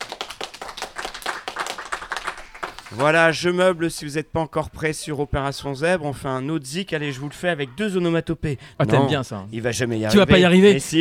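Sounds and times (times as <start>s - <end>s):
quiet applause after a song: 0.0s - 4.1s
speech: 2.9s - 10.9s.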